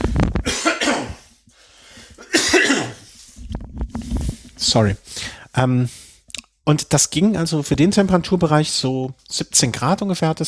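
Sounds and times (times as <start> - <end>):
person coughing to clear the throat: 0.4 - 1.3, 2.2 - 3.1
person breathing: 1.5 - 2.2, 3.0 - 6.3
speech: 4.6 - 6.1, 6.7 - 10.4.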